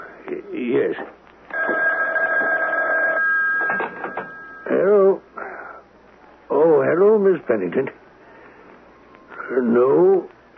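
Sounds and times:
speech: 0:00.8 - 0:01.2, 0:07.3 - 0:08.0, 0:09.5 - 0:10.3
telephone ringing with a continuous trilling tone: 0:01.5 - 0:04.9.

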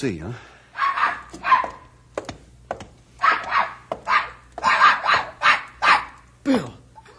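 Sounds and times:
speech: 0:00.0 - 0:00.5
dog barking while playing: 0:00.8 - 0:01.9, 0:03.2 - 0:06.2.

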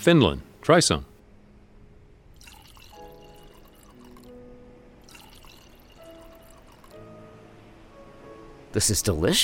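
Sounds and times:
speech: 0:00.0 - 0:01.1, 0:08.8 - 0:09.4
water poured from a pitcher into a glass: 0:02.4 - 0:04.3, 0:05.0 - 0:07.0.

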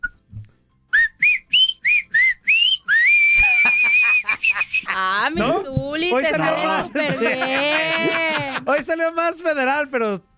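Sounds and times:
person whistling a short bright tune: 0:00.0 - 0:00.3, 0:00.9 - 0:04.8
laughter: 0:03.4 - 0:05.2, 0:06.2 - 0:08.8
speech: 0:05.0 - 0:10.3.

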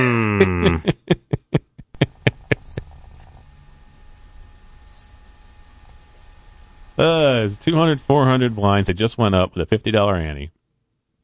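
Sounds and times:
laughter: 0:00.0 - 0:02.9
speech: 0:00.4 - 0:01.1, 0:07.0 - 0:10.6
quiet hiss: 0:01.9 - 0:10.5
high-pitched cricket chirps sound effect: 0:02.6 - 0:02.9, 0:04.8 - 0:05.3, 0:07.0 - 0:07.5
brief tone: 0:04.9 - 0:05.2, 0:07.2 - 0:07.5.

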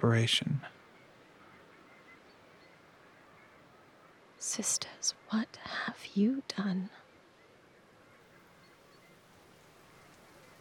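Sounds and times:
speech: 0:00.0 - 0:00.7, 0:04.4 - 0:07.0
steady rain falling: 0:08.4 - 0:10.5.

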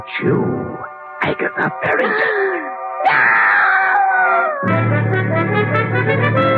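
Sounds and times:
speech: 0:00.0 - 0:03.4, 0:04.6 - 0:06.4
woman screaming and wailing in the night after waking in her bed: 0:02.3 - 0:04.7.

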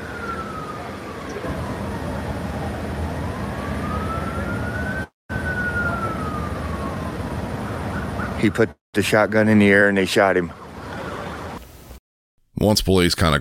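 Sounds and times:
ambulance siren wailing: 0:00.0 - 0:08.6
steady wash of street noise: 0:00.0 - 0:12.0
speech: 0:08.4 - 0:10.6, 0:12.6 - 0:13.3.

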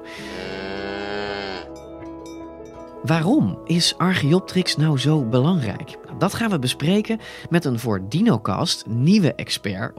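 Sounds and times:
cow mooing: 0:00.2 - 0:01.8
speech: 0:03.0 - 0:09.9.

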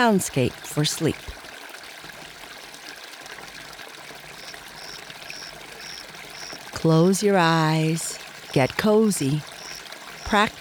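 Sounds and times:
speech: 0:00.0 - 0:01.4, 0:06.8 - 0:09.5, 0:10.3 - 0:10.6
gently rippling river water: 0:00.0 - 0:10.6
faint high chirps: 0:04.4 - 0:06.7, 0:09.4 - 0:10.4.

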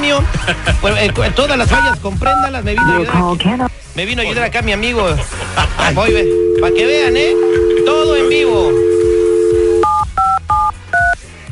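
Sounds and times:
laughter: 0:00.2 - 0:01.6, 0:05.1 - 0:06.1
speech: 0:00.2 - 0:08.9
telephone keypad dialing beeps: 0:01.8 - 0:03.0, 0:06.1 - 0:11.2
telephone dial tone: 0:06.3 - 0:10.0.

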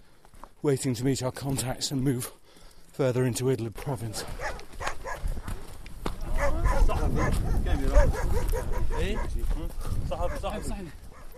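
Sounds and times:
speech: 0:00.6 - 0:04.6, 0:07.1 - 0:11.0
wild pack of dogs barking and yipping while chasing people on rough terrain at night: 0:04.2 - 0:05.6, 0:06.2 - 0:09.4, 0:10.2 - 0:11.3.

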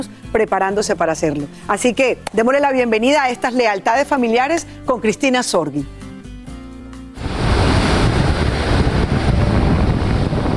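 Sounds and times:
speech: 0:00.0 - 0:06.0
sea waves washing onto the shore: 0:07.2 - 0:10.5
wind buffeting: 0:07.2 - 0:10.5.

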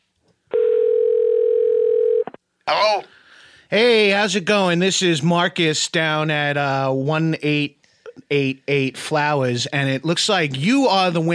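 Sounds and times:
telephone ringback tone on an outgoing call: 0:00.5 - 0:02.3
speech: 0:02.8 - 0:11.3.

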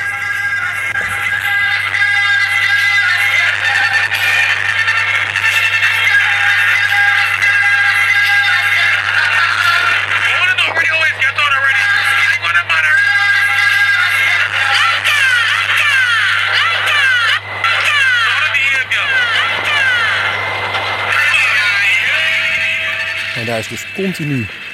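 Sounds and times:
loud distorted minibus stereo playing local radio: 0:00.0 - 0:24.7
steady low hum: 0:15.3 - 0:24.7
speech: 0:23.6 - 0:24.6.

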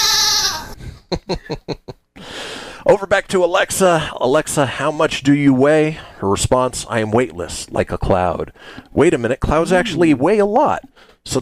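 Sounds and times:
wavering goat bleat sound effect: 0:00.0 - 0:00.8
speech: 0:01.1 - 0:02.0, 0:02.9 - 0:11.4.

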